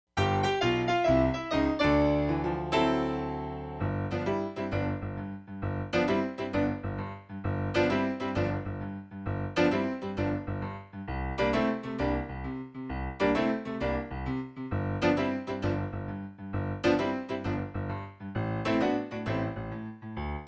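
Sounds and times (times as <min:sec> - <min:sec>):
blues piano track: 0:00.1 - 0:20.4.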